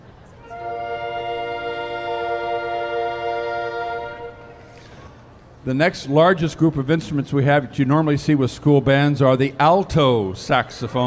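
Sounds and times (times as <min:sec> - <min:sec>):
soprano saxophones, saxello and C soprano, playing a chord together: 0:00.4 - 0:04.9
speech: 0:05.6 - 0:11.0.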